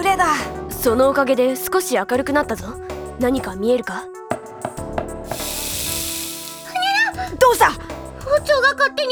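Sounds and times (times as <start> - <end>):
speech: 0.1 - 4.2, 7.5 - 9.1
stir-fry with garlic and butter sizzling in a frying pan over a gas flame: 5.3 - 7.2.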